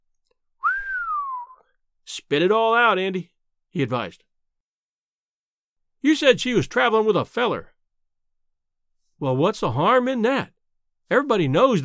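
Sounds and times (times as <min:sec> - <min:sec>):
man giving a long low whistle: 0:00.6 - 0:01.8
speech: 0:02.3 - 0:04.3, 0:06.0 - 0:07.7, 0:09.2 - 0:10.5, 0:11.1 - 0:11.8.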